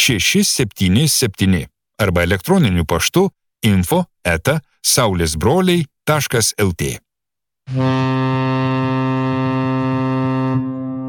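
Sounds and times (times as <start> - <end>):
speech: 0.0 - 7.0, 7.7 - 8.1
deep horn blast from a large excursion steamboat on the Nemunas river at Birštonas: 7.7 - 11.0.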